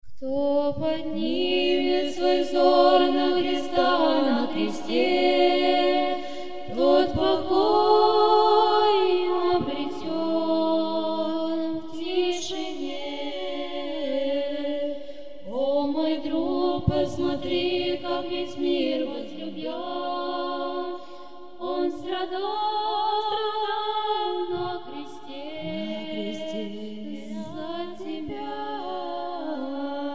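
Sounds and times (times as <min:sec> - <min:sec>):
spiritual chant singing: 0:00.2 - 0:30.1.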